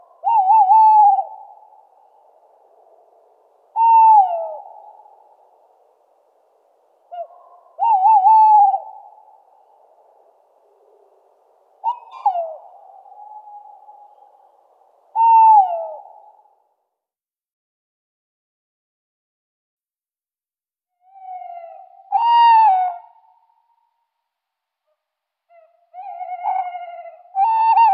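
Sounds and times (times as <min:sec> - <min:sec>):
tawny owl hooting in Luxembourg: 0:00.0 - 0:16.5, 0:21.0 - 0:23.8, 0:25.5 - 0:27.9.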